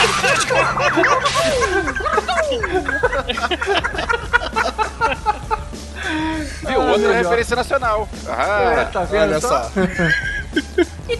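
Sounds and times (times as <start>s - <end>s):
whip cracks: 0.0s - 1.9s
laughter: 0.0s - 7.3s, 9.2s - 11.0s
speech: 7.4s - 10.2s.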